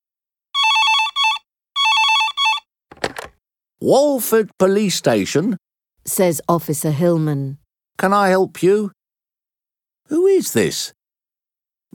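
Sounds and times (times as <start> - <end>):
telephone bell ringing: 0.6 - 3.1
clattering noise: 2.9 - 3.4
speech: 3.8 - 9.0, 10.1 - 11.0.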